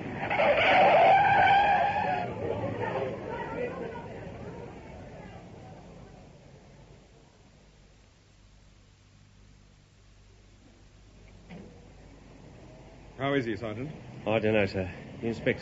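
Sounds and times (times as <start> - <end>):
car tire screech as it skids hitting a man: 0.0 - 4.8
speech: 13.3 - 15.6.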